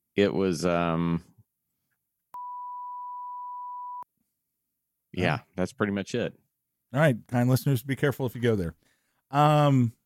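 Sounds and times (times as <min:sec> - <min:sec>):
speech: 0:00.2 - 0:01.3, 0:05.2 - 0:10.0
high-pitched censor beep: 0:02.4 - 0:04.1.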